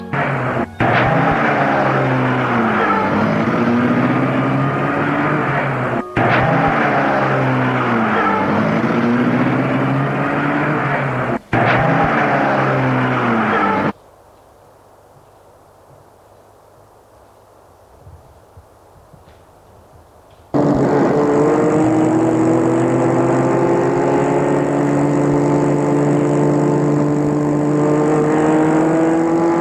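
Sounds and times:
car engine running: 0:00.0 - 0:13.9, 0:20.5 - 0:29.5.

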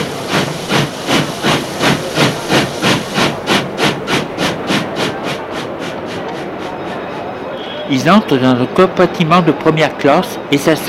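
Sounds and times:
old steam train arriving with rhythmic bursts of hissing steam: 0:00.0 - 0:08.2
speech: 0:07.9 - 0:10.8.

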